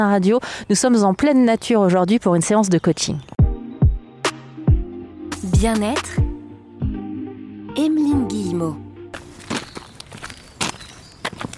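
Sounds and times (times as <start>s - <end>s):
speech: 0.0s - 3.4s, 5.6s - 6.3s, 7.8s - 8.8s
footsteps crunching along an outdoor path: 9.1s - 11.5s.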